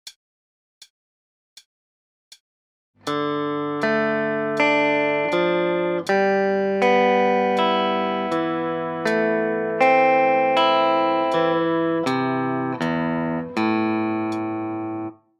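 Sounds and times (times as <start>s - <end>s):
electric guitar arpeggios at beginner tempo: 3.1s - 15.2s.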